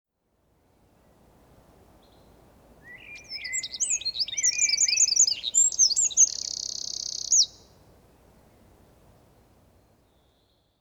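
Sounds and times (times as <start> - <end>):
Eurasian wren Troglodytes troglodytes song: 2.0 - 7.8.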